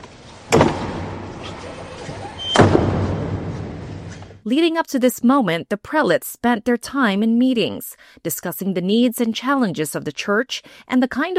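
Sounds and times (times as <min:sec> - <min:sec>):
two heavy chapel doors slamming: 0:00.4 - 0:04.2
speech: 0:04.4 - 0:11.3.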